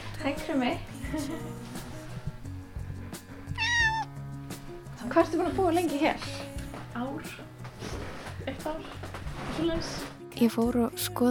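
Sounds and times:
speech: 0.2s - 1.8s, 5.1s - 6.4s, 8.6s - 9.0s, 9.6s - 11.2s
cat meowing in a home: 3.5s - 4.2s.

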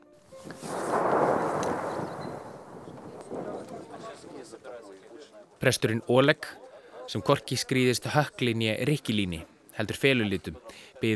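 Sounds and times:
distant shelling from an artillery bombardment: 0.5s - 4.4s
speech: 5.6s - 11.1s.

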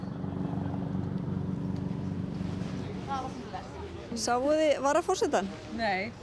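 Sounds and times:
helicopter flying overhead: 0.0s - 4.1s
outdoor noise: 0.0s - 6.2s
speech: 4.2s - 6.2s.

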